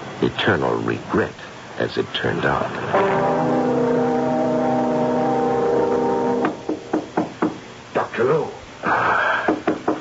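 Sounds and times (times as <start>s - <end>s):
steady hiss: 0.0s - 10.0s
speech: 0.2s - 3.7s, 8.2s - 9.0s
quick knocks on a door: 6.4s - 7.6s.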